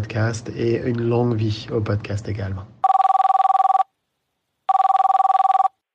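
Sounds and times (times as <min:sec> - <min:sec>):
speech: 0:00.0 - 0:02.8
telephone ringing: 0:02.8 - 0:03.9, 0:04.7 - 0:05.8.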